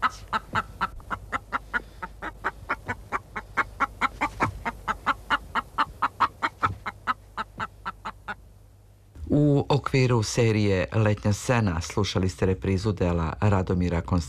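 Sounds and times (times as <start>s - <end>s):
chicken clucking: 0.0s - 8.4s
faint low hum: 0.0s - 14.2s
speech: 9.9s - 14.2s.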